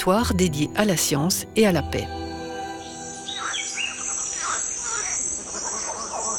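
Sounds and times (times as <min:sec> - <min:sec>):
speech: 0:00.0 - 0:02.2
birds chirping in French Guiana tropical rainforest: 0:00.0 - 0:06.3
frogs croaking in French Guiana tropical rainforest: 0:01.7 - 0:06.3
high insect drone in French Guiana tropical rainforest: 0:02.0 - 0:06.3
monkeys in French Guiana tropical rainforest: 0:03.2 - 0:06.3.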